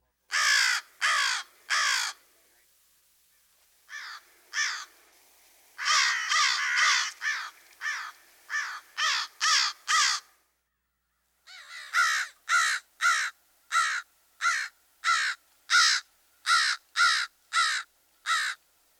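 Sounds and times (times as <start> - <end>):
crow cawing with harsh raspy calls: 0.3 - 2.2, 3.9 - 5.0, 5.8 - 10.4, 11.5 - 18.6.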